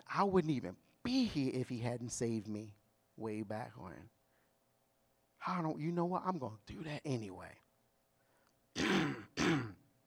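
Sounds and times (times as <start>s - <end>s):
speech: 0.1s - 4.2s, 5.4s - 7.6s
person clearing throat: 8.8s - 9.8s.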